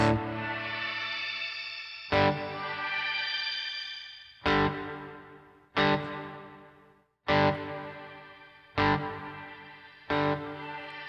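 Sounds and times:
electric guitar strumming chords through a shimmer reverb pedal: 0:00.0 - 0:01.3, 0:02.1 - 0:02.9, 0:04.4 - 0:06.7, 0:07.3 - 0:11.0.

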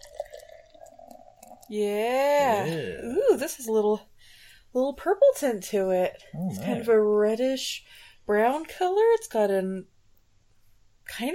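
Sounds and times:
blackberry cream ale beer pouring into a glass: 0:00.0 - 0:01.7
speech: 0:01.7 - 0:04.1, 0:04.7 - 0:09.9, 0:11.1 - 0:11.3.

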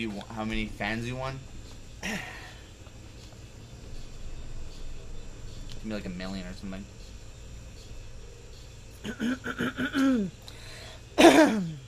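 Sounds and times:
speech: 0:00.0 - 0:02.4, 0:05.8 - 0:07.0, 0:09.0 - 0:10.4, 0:11.2 - 0:11.8
throat clearing with short voiced grunts and a harsh rasping clear: 0:02.0 - 0:02.5, 0:09.0 - 0:10.3, 0:11.2 - 0:11.8.

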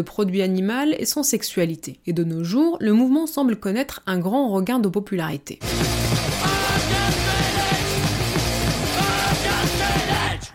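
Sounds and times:
speech: 0:00.0 - 0:06.0
loud hardcore punk music with fast drums and distorted guitars: 0:05.6 - 0:10.5
shouted vocal over a hardcore punk band: 0:06.2 - 0:10.5.

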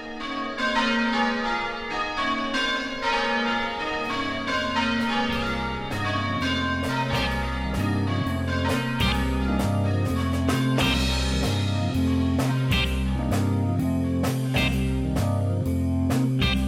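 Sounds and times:
church bells ringing: 0:00.0 - 0:16.6
deep shifting low hum: 0:05.5 - 0:16.6.

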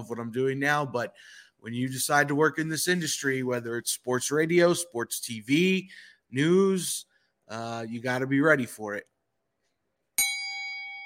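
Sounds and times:
speech: 0:00.0 - 0:09.1
bright bell ding with metallic tone: 0:10.2 - 0:11.0.

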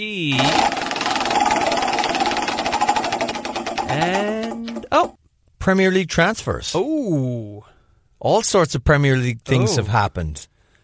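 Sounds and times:
speech: 0:00.0 - 0:00.8, 0:03.9 - 0:04.4, 0:05.0 - 0:10.5
prize wheel spinning and clicking: 0:00.3 - 0:05.2.

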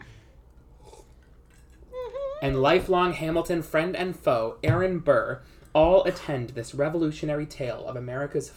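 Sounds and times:
person sipping a drink with slurp and swallow: 0:00.4 - 0:02.0
speech: 0:02.4 - 0:08.5.

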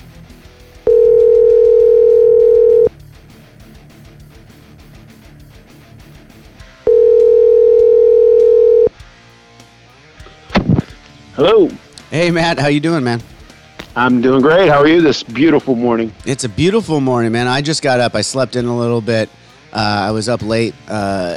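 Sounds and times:
soft music playing quietly: 0:00.9 - 0:02.9, 0:06.9 - 0:21.3
telephone dial tone while placing a call: 0:00.9 - 0:02.9, 0:06.9 - 0:08.9
speech: 0:11.4 - 0:13.3, 0:14.0 - 0:21.3.

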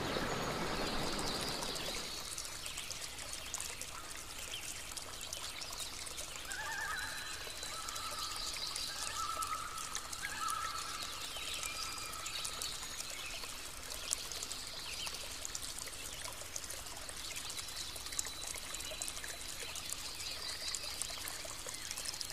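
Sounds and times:
birds chirping and calling: 0:00.0 - 0:02.6
loud rushing pour of water: 0:00.0 - 0:22.3.

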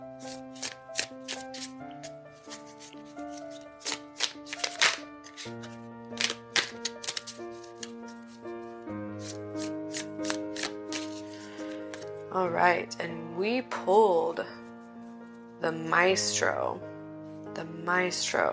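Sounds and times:
soft instrumental music: 0:00.0 - 0:18.5
cards being shuffled: 0:00.2 - 0:08.5, 0:09.2 - 0:12.2
speech: 0:12.4 - 0:14.6, 0:15.6 - 0:16.9, 0:17.8 - 0:18.5.

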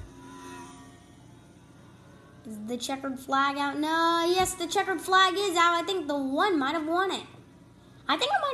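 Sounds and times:
race car engine whining on pit road: 0:00.0 - 0:02.8
speech: 0:02.5 - 0:07.4, 0:08.1 - 0:08.5.

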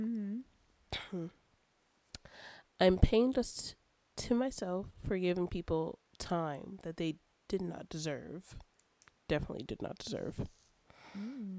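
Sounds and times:
person humming: 0:00.0 - 0:00.5, 0:11.1 - 0:11.5
speech: 0:01.1 - 0:01.4, 0:02.8 - 0:08.7, 0:09.3 - 0:11.5.

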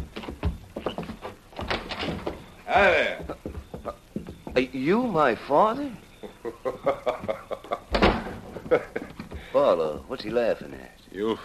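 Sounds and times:
house door opening with clunks and rattles: 0:00.0 - 0:02.6, 0:07.9 - 0:10.0
speech: 0:02.7 - 0:03.5, 0:04.6 - 0:06.0, 0:06.6 - 0:07.5, 0:09.5 - 0:11.4
laughter: 0:06.2 - 0:09.5.

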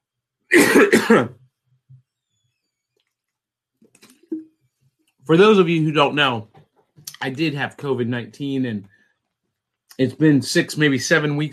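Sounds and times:
harsh coughs: 0:00.5 - 0:01.3
speech: 0:00.5 - 0:01.4, 0:05.3 - 0:06.5, 0:07.2 - 0:09.0, 0:10.0 - 0:11.5.

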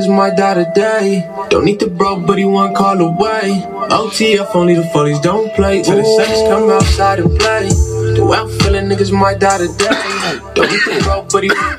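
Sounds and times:
speech: 0:00.0 - 0:11.7
person coughing raspily: 0:09.8 - 0:11.7.

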